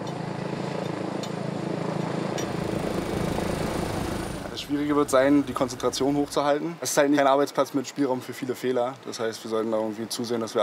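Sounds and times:
helicopter flying: 0.0s - 6.6s
speech: 4.7s - 10.6s.

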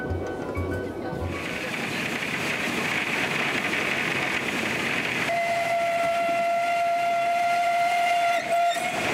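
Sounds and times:
steam locomotive hauling a winter excursion train: 0.2s - 9.1s
steam locomotive whistle: 5.3s - 9.1s.

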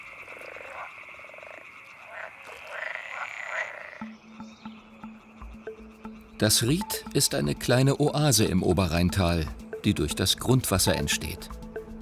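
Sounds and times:
deeper repeated frog croak: 0.0s - 6.3s
chorus of frogs croaking: 0.0s - 9.9s
speech: 6.4s - 11.6s.

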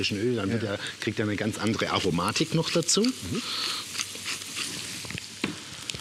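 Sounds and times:
speech: 0.0s - 4.0s
ground pepper sizzling in melted butter in a hot pan: 0.0s - 6.0s
small crackling pops from pepper in butter: 2.4s - 6.0s.

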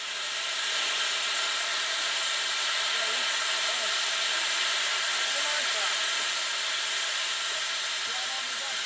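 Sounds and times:
steam locomotive hissing while taking on water: 0.0s - 8.8s.

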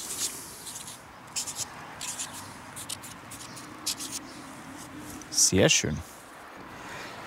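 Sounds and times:
signature being written on a stove tile: 0.0s - 4.3s
speech: 5.4s - 6.1s.

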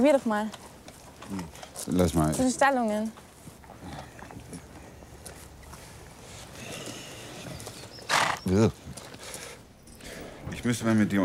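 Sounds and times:
speech: 0.0s - 0.7s, 1.3s - 3.2s, 8.5s - 8.8s, 10.6s - 11.2s
faint movement outdoors: 3.2s - 11.2s
horse snorting on a therapy riding farm: 6.4s - 10.7s
horse whinnying on a therapy riding farm: 6.6s - 8.8s.

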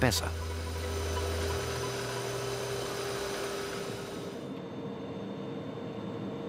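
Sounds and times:
speech: 0.0s - 0.4s
freight locomotive rumbling drone heard from driver's cab: 0.0s - 4.5s
faint constant whine in freight locomotive cab: 0.0s - 6.4s.

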